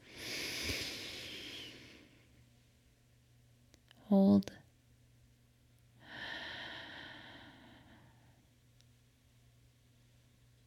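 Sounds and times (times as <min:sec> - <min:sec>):
long deep inhale during a guided breathing exercise: 0:00.0 - 0:02.1, 0:06.0 - 0:08.4
speech: 0:04.1 - 0:04.6.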